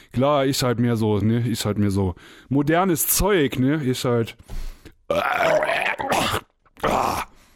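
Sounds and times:
speech: 0:00.1 - 0:07.3
loud throaty burp: 0:05.1 - 0:07.3.

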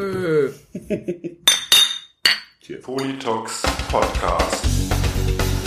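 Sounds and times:
speech: 0:00.0 - 0:01.6, 0:02.7 - 0:05.5
laughter: 0:00.5 - 0:01.4
glasses clinking in a toast: 0:01.5 - 0:03.3.

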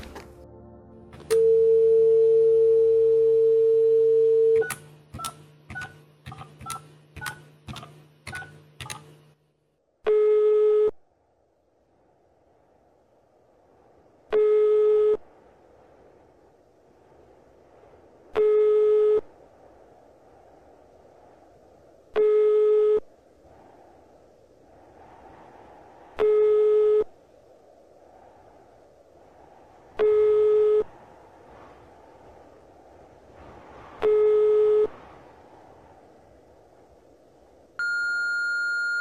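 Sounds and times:
pulsing telephone line tone: 0:01.3 - 0:04.8, 0:10.1 - 0:11.0, 0:18.4 - 0:19.3, 0:22.2 - 0:23.1, 0:26.2 - 0:27.1, 0:30.0 - 0:30.9, 0:34.0 - 0:34.9, 0:37.8 - 0:38.9.

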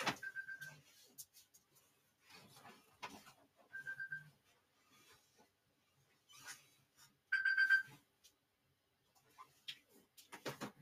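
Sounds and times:
phone alarm chiming: 0:00.1 - 0:00.8, 0:03.7 - 0:04.3, 0:07.3 - 0:08.0.

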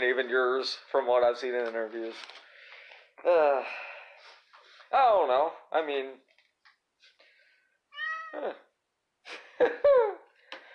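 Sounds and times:
speech: 0:00.0 - 0:02.4, 0:03.2 - 0:03.9, 0:04.9 - 0:06.3, 0:08.3 - 0:08.6, 0:09.3 - 0:10.2
cat meowing: 0:07.9 - 0:08.6.

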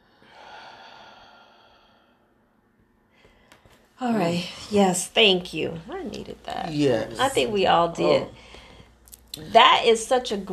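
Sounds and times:
person breathing deeply during a guided breathing exercise: 0:00.0 - 0:02.4
speech: 0:04.0 - 0:08.5, 0:09.3 - 0:10.5.

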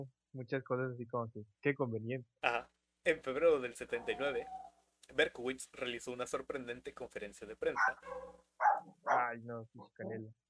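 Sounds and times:
speech: 0:00.0 - 0:08.4, 0:09.3 - 0:10.4
dog barking and yelping: 0:04.0 - 0:04.8, 0:07.8 - 0:09.3.

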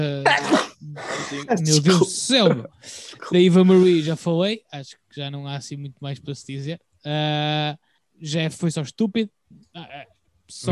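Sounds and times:
person sneezing: 0:00.2 - 0:02.0
speech: 0:01.3 - 0:10.7.

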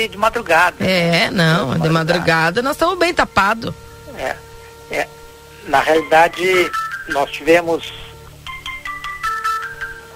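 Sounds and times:
speech: 0:00.0 - 0:08.0
low steady hum: 0:00.0 - 0:10.1
telephone ringing with melodic electronic ringtone: 0:06.0 - 0:10.1.

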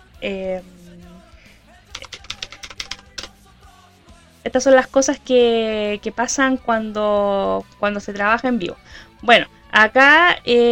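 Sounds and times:
speech: 0:00.2 - 0:00.8, 0:04.5 - 0:10.7
typing on a computer keyboard: 0:01.9 - 0:03.3.

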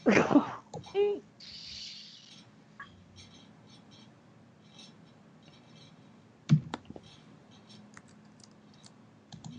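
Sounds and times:
louder knocks: 0:06.5 - 0:07.0
computer keyboard typing: 0:06.5 - 0:09.5.

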